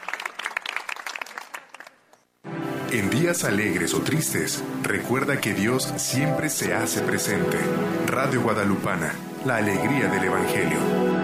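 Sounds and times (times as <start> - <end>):
applause: 0.0 - 2.3
speech: 2.9 - 11.2.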